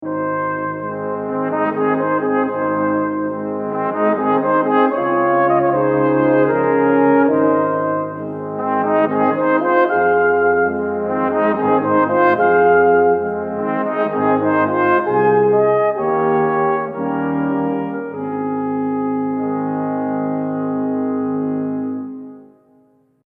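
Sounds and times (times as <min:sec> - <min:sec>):
brass waltz ending: 0:00.0 - 0:22.8.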